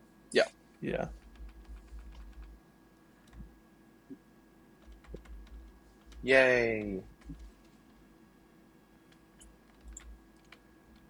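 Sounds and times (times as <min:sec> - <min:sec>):
low steady hum: 0:00.0 - 0:11.0
speech: 0:00.3 - 0:01.2, 0:06.2 - 0:07.1
typing on a computer keyboard: 0:00.9 - 0:02.6, 0:03.2 - 0:03.5, 0:04.8 - 0:08.3, 0:09.0 - 0:11.0.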